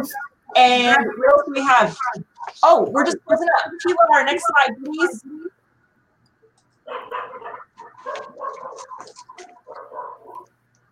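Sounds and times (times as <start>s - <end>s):
dog barking in yappy slightly whiny barks: 0.0s - 2.3s, 6.8s - 10.5s
speech: 0.0s - 5.6s.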